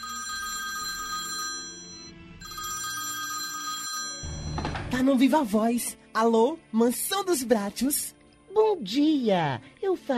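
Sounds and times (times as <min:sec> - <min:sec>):
telephone ringing with metallic trills: 0:00.0 - 0:05.0
speech: 0:04.9 - 0:10.1.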